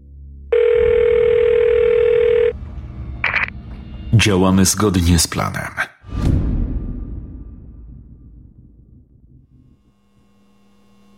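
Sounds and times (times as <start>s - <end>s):
telephone dial tone: 0.5s - 2.6s
speech: 4.2s - 5.8s
low rumble: 6.9s - 11.1s.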